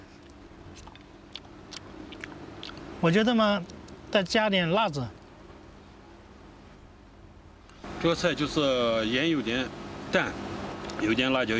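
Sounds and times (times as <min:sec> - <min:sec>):
chewing and biting while tasting stir-fried gourd with pork: 0:00.1 - 0:02.9
speech: 0:03.0 - 0:05.2, 0:08.0 - 0:11.5.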